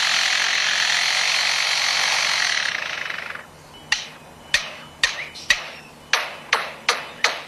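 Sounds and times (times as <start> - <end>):
lyrebird mimicking a power tool grinding buzz near a construction site: 0.0 - 7.4
lyrebird mimicking sharp hammer knocks near a construction site: 3.9 - 7.4.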